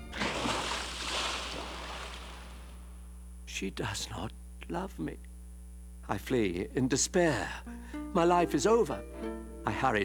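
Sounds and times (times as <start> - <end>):
cold water pouring and splashing over a head and violin: 0.1 - 2.7
speech: 3.6 - 5.3, 6.1 - 10.0.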